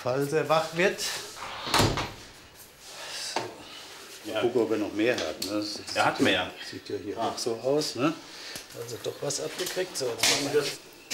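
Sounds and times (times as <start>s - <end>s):
speech: 0.0s - 2.0s, 4.2s - 10.9s
doors and windows thudding shut: 1.4s - 2.4s.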